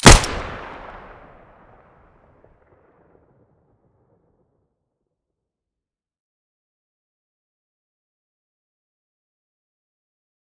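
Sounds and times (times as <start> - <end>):
Five-seven pistol muzzle blast: 0.0 - 1.2.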